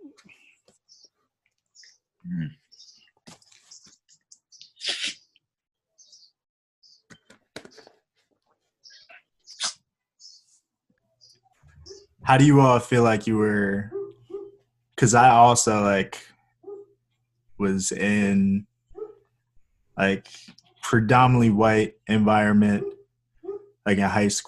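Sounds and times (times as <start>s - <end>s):
speech: 2.2s - 2.6s, 12.3s - 14.0s, 15.0s - 16.3s, 17.6s - 18.7s, 20.0s - 22.9s, 23.9s - 24.4s
dogs barking outside: 11.8s - 12.5s, 13.8s - 14.7s, 16.6s - 17.0s, 18.9s - 19.3s, 22.6s - 23.8s.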